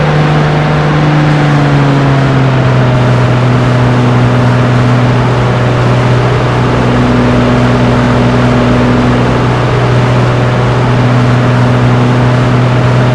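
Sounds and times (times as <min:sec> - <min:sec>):
Toyota RAV4 engine revving down: 0:00.0 - 0:13.1.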